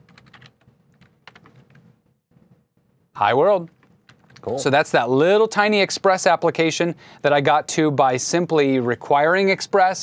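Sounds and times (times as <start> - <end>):
rapid typing on a computer keyboard: 0.0 - 1.8, 3.7 - 4.6
speech: 3.2 - 3.8, 4.4 - 10.0.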